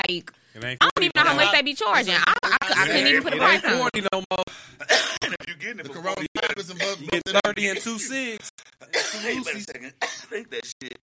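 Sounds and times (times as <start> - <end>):
speech: 0.1 - 11.0
laughter: 1.2 - 3.9
harsh raspy coughs: 4.8 - 5.5, 6.8 - 7.2, 8.8 - 10.4.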